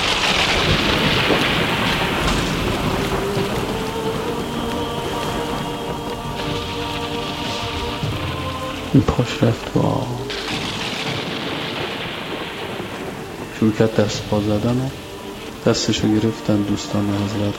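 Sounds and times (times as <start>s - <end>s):
deep rolling thunder: 0.0s - 17.5s
heavy rainfall: 0.0s - 17.5s
speech: 9.0s - 10.3s, 13.6s - 15.0s, 15.6s - 17.5s.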